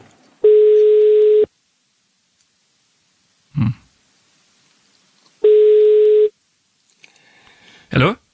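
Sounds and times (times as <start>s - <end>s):
telephone ringback tone on an outgoing call: 0.4s - 1.5s, 5.4s - 6.3s
murmured voice: 3.5s - 3.9s
speech: 8.0s - 8.2s.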